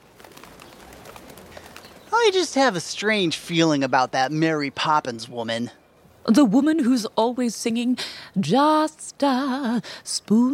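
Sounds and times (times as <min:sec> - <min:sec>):
pigeons cooing on a windowsill: 0:00.0 - 0:02.4
hiss: 0:00.0 - 0:10.5
speech: 0:02.2 - 0:10.5.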